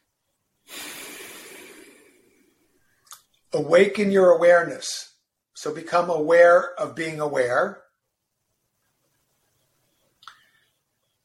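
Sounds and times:
person exhaling during a standing guided breathing exercise: 0.6 - 2.6
speech: 3.6 - 7.8.

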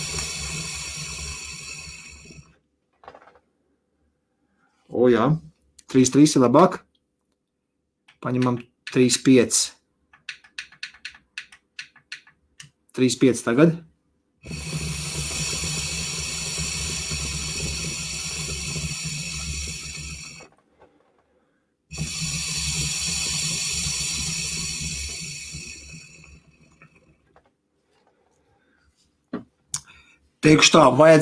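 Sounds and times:
gurgling, hissing water bubbling through an electronic water pipe: 0.0 - 2.5, 14.4 - 20.5, 21.9 - 27.3
speech: 5.0 - 6.9, 8.2 - 9.8, 13.0 - 14.6, 30.5 - 31.2.

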